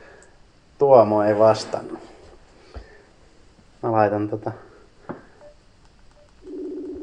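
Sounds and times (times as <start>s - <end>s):
speech: 0.8s - 2.1s, 3.8s - 4.7s
phone dialing tones for an outgoing call to Kenya: 5.4s - 7.0s
steady phone ringback tone: 6.4s - 7.0s.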